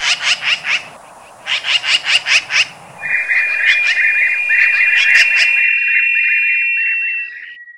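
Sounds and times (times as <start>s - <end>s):
Eurasian magpie harsh chatter: 0.0s - 5.8s
steady tone: 2.7s - 7.5s.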